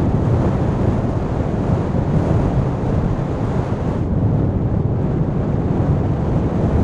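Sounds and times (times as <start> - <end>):
large fire jet: 0.0 - 6.8.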